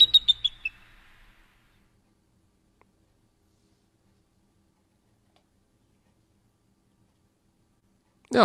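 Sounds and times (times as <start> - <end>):
bird chirping: 0.0 - 1.6.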